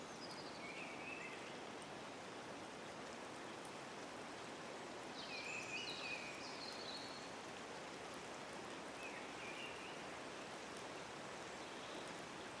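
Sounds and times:
gently flowing water: 0.0s - 12.5s.

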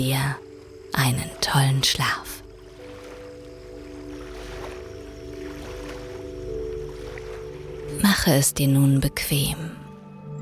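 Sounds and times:
speech: 0.0s - 2.4s, 8.0s - 9.8s
gentle ocean waves rushing: 2.5s - 8.1s.

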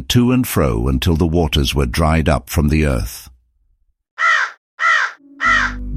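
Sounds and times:
speech: 0.0s - 3.3s
raven cawing: 4.2s - 5.8s.

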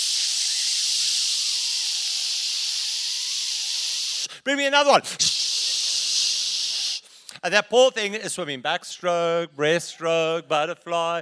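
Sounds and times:
voice imitating the hiss of an aerosol insect spray can: 0.0s - 4.4s, 5.0s - 7.1s
speech: 4.3s - 5.3s, 7.4s - 11.2s.

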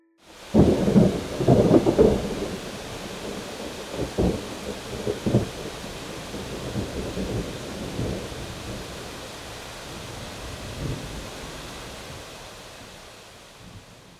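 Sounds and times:
heavy downpour hissing: 0.2s - 14.1s
deep rumbles of thunder: 0.4s - 12.2s.

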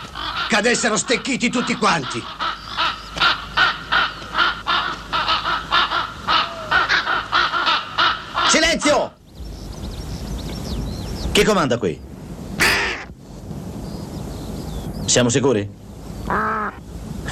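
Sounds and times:
flock of crows cawing: 0.0s - 9.2s, 12.6s - 13.2s, 16.3s - 17.3s
steady hiss: 0.0s - 17.3s
speech: 0.5s - 2.4s, 11.4s - 12.1s, 15.1s - 16.5s.

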